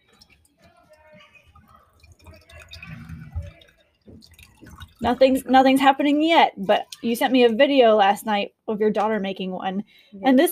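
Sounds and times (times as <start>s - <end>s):
faint voices murmuring: 0.0s - 5.7s
milk pouring into mugs: 0.0s - 9.1s
speech: 5.0s - 10.5s.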